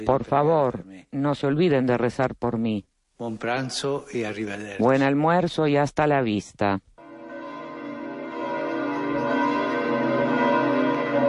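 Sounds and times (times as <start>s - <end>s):
speech: 0.0s - 6.9s
church bells tolling at a basilica: 7.0s - 11.2s.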